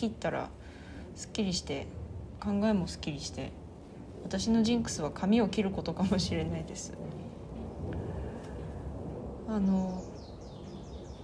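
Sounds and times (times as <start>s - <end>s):
speech: 0.0s - 0.6s, 1.2s - 3.6s, 4.2s - 7.2s, 9.5s - 10.1s
rumble of wind: 0.0s - 11.2s
birds chirping outdoors with high downward-sliding calls: 9.5s - 11.2s.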